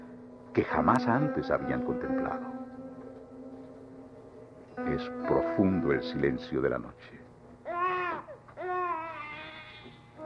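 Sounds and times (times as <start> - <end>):
speech: 0.5 - 2.6, 4.8 - 7.2
faint baby crying: 5.0 - 6.0, 7.6 - 10.2.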